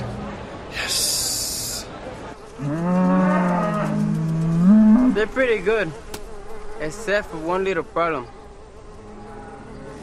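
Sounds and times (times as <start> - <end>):
rustle: 2.0 - 8.1
dairy cow mooing: 2.6 - 5.2
speech: 5.2 - 6.1, 6.8 - 8.4.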